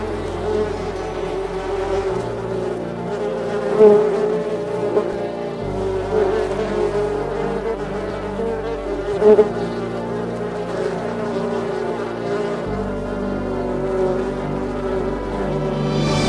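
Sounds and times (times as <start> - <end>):
honey bees buzzing around a huge beehive in a forest: 0.0 - 16.2.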